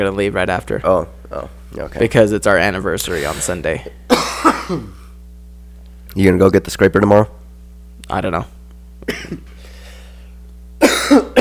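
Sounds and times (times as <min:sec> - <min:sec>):
speech: 0:00.0 - 0:05.0, 0:06.1 - 0:07.4, 0:08.1 - 0:09.5, 0:11.1 - 0:11.3
low steady hum: 0:00.0 - 0:11.3
person coughing: 0:03.1 - 0:05.1, 0:09.0 - 0:09.6, 0:10.8 - 0:11.3.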